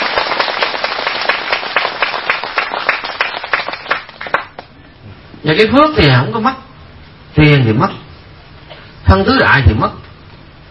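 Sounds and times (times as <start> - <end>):
audience applauding: 0.0 - 4.7
speech: 5.4 - 6.6, 7.4 - 8.0, 9.1 - 10.0.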